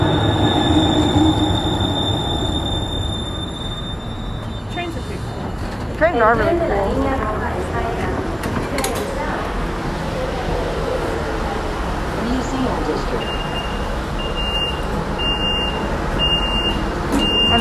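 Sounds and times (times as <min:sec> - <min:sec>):
steady high-pitched train squeal: 0:00.0 - 0:05.4
Red Line subway train rumbling into a station: 0:00.0 - 0:17.5
station announcement of arriving train: 0:00.0 - 0:17.5
speech: 0:06.2 - 0:07.3.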